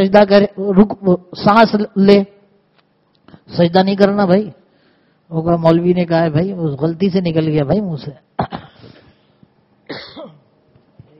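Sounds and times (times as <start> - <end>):
speech: 0.0 - 2.4, 3.5 - 4.6, 5.3 - 8.7
person coughing: 8.4 - 9.0, 9.9 - 10.6.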